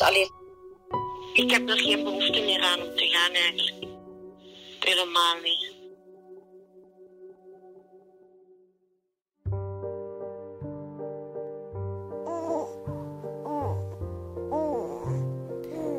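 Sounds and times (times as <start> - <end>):
speech: 0.1 - 0.4, 1.4 - 3.9, 4.8 - 5.7
baby boy in a bouncer chair gurgling and cooing: 12.2 - 15.9.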